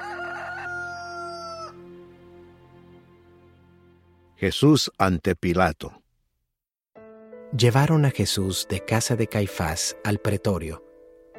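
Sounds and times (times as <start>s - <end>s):
rooster crowing: 0.0s - 1.9s
speech: 4.4s - 6.0s, 7.5s - 10.8s.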